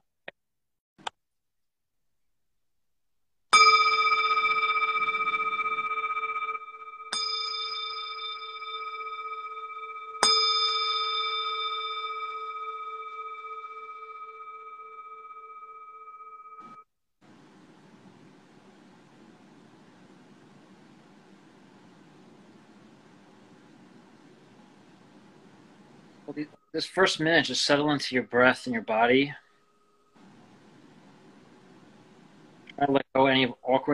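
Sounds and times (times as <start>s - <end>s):
meditation bell struck to start a sitting meditation: 3.5s - 16.8s, 29.4s - 30.2s
speech: 26.3s - 29.4s, 32.8s - 33.9s.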